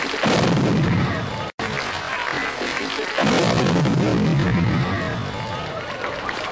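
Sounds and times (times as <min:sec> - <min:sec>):
explosion of cherry bombs and gunpowder hidden in a drum kit on stage: 0:00.2 - 0:01.3, 0:03.2 - 0:05.9
sustained rumbling crackling roar with booming low end: 0:00.3 - 0:01.9, 0:03.2 - 0:06.4.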